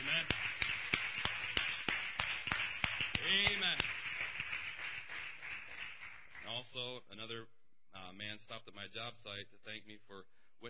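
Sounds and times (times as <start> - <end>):
congregation rhythmic clapping at a church service: 0.0 - 6.9
speech: 8.4 - 10.6.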